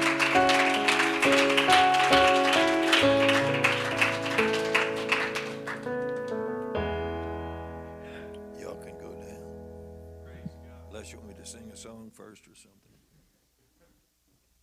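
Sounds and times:
audience clapping hands in a steady rhythm: 0.0s - 6.6s
loud sustained keyboard or organ music: 0.0s - 12.2s.

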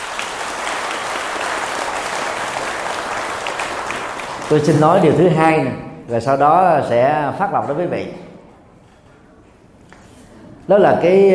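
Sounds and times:
large audience applauding: 0.0s - 5.2s
speech: 4.5s - 8.2s, 10.7s - 11.3s.

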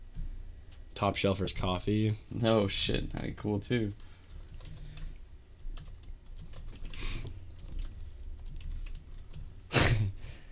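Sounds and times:
speech: 1.0s - 4.1s
typing on a computer keyboard during an online search: 4.2s - 9.6s.

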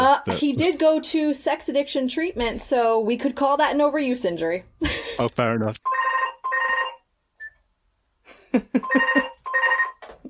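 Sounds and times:
speech: 0.2s - 6.0s, 8.5s - 9.3s
telephone ringing in short bright electronic bursts: 5.9s - 7.0s, 8.8s - 10.0s.

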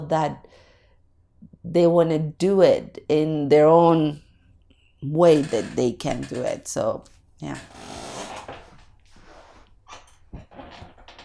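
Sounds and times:
speech: 0.0s - 0.6s, 1.6s - 4.2s, 5.0s - 8.0s
squeaky chair creaking as it shifts: 5.2s - 6.8s, 7.4s - 11.2s.

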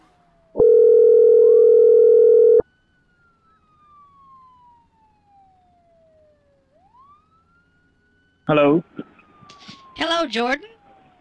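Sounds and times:
telephone tone after call hung up: 0.6s - 2.6s
speech: 8.5s - 10.7s.

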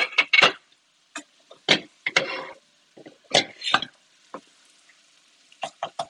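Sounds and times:
spatula stirring and chopping sausage in a skillet: 0.0s - 4.0s
sausage frying in a skillet: 0.0s - 6.0s.

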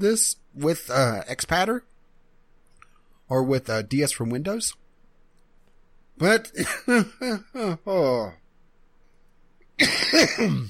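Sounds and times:
speech: 0.0s - 1.9s, 3.3s - 4.8s, 6.2s - 8.4s, 9.8s - 10.6s
person clearing throat: 6.6s - 7.8s, 9.8s - 10.6s
person coughing: 6.6s - 7.8s, 9.8s - 10.6s.

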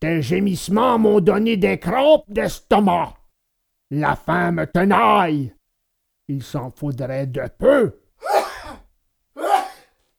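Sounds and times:
speech: 0.0s - 3.2s, 3.9s - 5.6s, 6.3s - 8.4s
person acting out sharp breathy sneezes: 8.2s - 10.0s.

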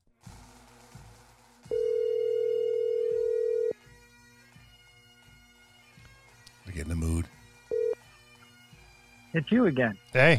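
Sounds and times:
mobile phone ringback tone through a speakerphone: 1.7s - 3.8s, 7.7s - 8.0s
speech: 9.4s - 10.3s.

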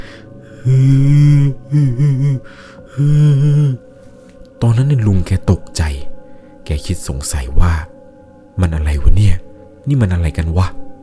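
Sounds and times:
person imitating sobbing with wavering wails: 0.5s - 3.8s
speech: 0.6s - 3.8s, 4.6s - 6.1s, 6.7s - 7.9s, 8.6s - 10.8s.

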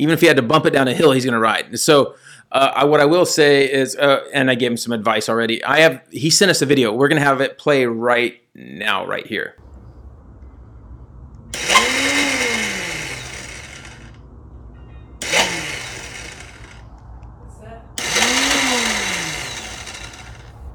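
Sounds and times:
speech: 0.0s - 9.7s
dirt bike electric starter motor spinning freely on its Bendix gear: 11.4s - 14.2s, 15.2s - 17.1s, 18.0s - 20.7s.

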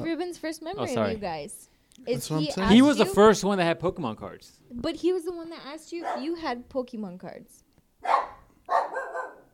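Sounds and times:
speech: 0.1s - 8.3s
dog barking: 6.0s - 6.4s, 8.0s - 9.5s.

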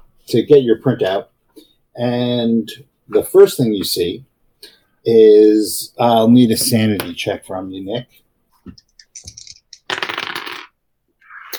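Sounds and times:
speech: 0.3s - 9.4s
dice clattering onto a hard surface: 9.0s - 10.8s.

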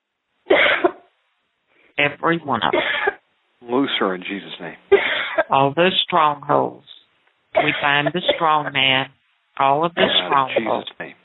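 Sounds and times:
harsh cough: 0.5s - 1.0s, 2.7s - 3.2s, 4.9s - 5.5s, 7.6s - 8.8s, 10.0s - 10.9s
speech: 2.0s - 6.9s, 7.6s - 11.0s.

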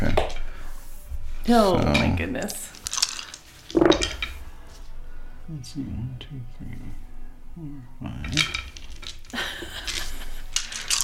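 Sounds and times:
speech: 1.5s - 2.8s, 5.5s - 8.7s
dice clattering across a hard tabletop: 2.7s - 4.2s, 8.4s - 11.0s.

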